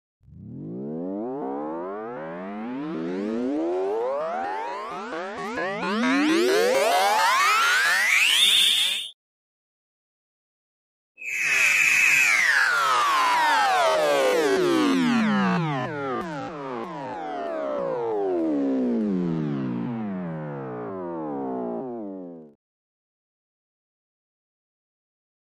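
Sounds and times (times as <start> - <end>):
rising multi synth tones: 0.2 - 9.1, 11.2 - 22.5.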